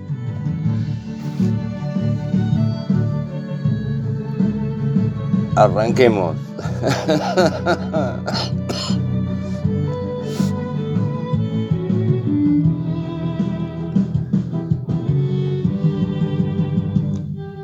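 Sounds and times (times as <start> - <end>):
dense continuous music: 0.0 - 17.6
speech: 5.6 - 7.8
laughter: 5.8 - 9.6
person coughing harshly: 6.6 - 9.0
throat clearing: 6.6 - 9.1.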